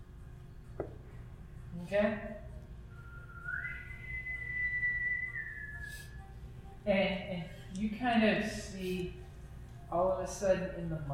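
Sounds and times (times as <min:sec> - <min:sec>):
speech: 0:01.8 - 0:02.4, 0:06.9 - 0:09.2, 0:09.9 - 0:11.1
dragon whistle sound effect: 0:02.9 - 0:06.2.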